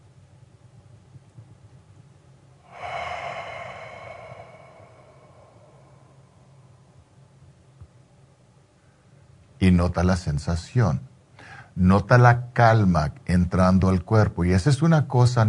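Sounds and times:
quiet room hum: 0:00.0 - 0:15.4
slow deep breath close to the microphone: 0:02.6 - 0:07.2, 0:11.4 - 0:11.8
speech: 0:09.7 - 0:11.1, 0:11.8 - 0:15.4.

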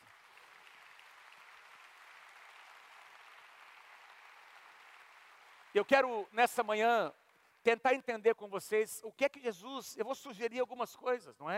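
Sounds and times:
audience applauding: 0:00.0 - 0:06.7
speech: 0:05.7 - 0:11.5.

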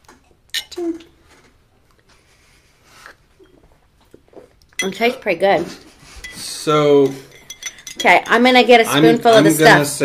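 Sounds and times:
speech: 0:00.8 - 0:01.1, 0:04.8 - 0:05.9, 0:06.6 - 0:07.3, 0:08.0 - 0:10.0
drinking glasses clinking in a toast: 0:06.2 - 0:10.0.

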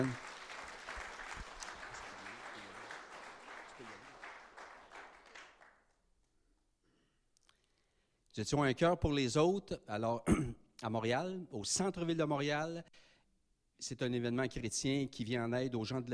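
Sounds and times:
speech: 0:00.0 - 0:00.2, 0:08.4 - 0:13.1, 0:13.8 - 0:16.1
crowd applause: 0:00.0 - 0:05.8.

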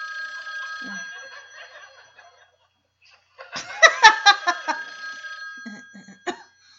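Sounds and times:
electronic telephone ring: 0:00.0 - 0:02.7, 0:03.5 - 0:06.7
choppy laughter-like bursts: 0:00.8 - 0:04.9.

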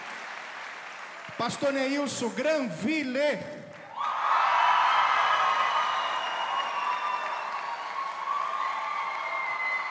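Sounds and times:
audience clapping: 0:00.0 - 0:02.6, 0:03.6 - 0:09.8
speech: 0:01.3 - 0:03.6
faint cheers: 0:03.9 - 0:09.8.

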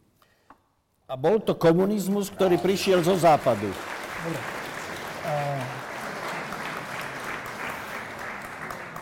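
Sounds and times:
speech: 0:01.1 - 0:04.6, 0:05.2 - 0:05.8
crowd applauding: 0:02.4 - 0:09.0.

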